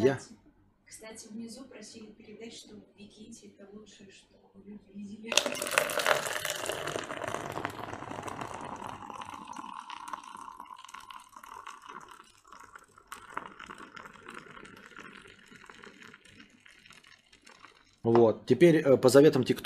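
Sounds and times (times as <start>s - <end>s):
speech: 0.0s - 7.8s, 18.0s - 19.6s
beer with a foamy head pouring into a glass: 5.3s - 18.4s.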